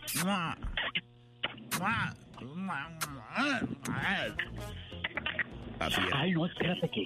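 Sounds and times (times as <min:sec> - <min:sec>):
two people making exaggerated kissing smooch sounds: 0:00.0 - 0:02.1, 0:02.9 - 0:05.5
playful warbling vocal sounds: 0:00.0 - 0:06.2.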